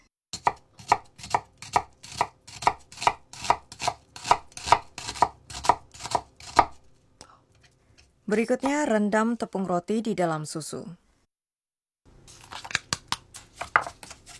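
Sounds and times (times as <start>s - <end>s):
knife chopping an onion finely on a cutting board: 0.4s - 6.9s, 12.3s - 14.3s
speech: 8.3s - 11.0s.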